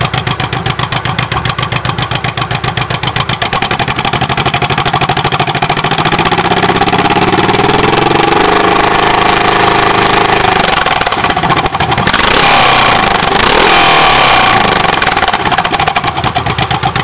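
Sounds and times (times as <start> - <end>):
Honda VTX1800R motorcycle exhaust: 0.0 - 17.0.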